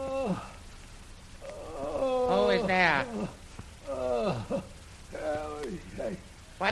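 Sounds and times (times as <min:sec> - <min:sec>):
man groaning: 0:00.0 - 0:00.6, 0:01.4 - 0:05.6
speech: 0:00.3 - 0:00.5, 0:06.6 - 0:06.7.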